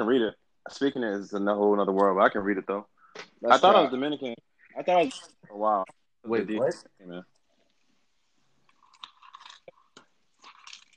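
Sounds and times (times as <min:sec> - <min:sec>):
speech: 0:00.0 - 0:07.3
person chewing a crunchy chocolate candy bar: 0:08.6 - 0:10.9.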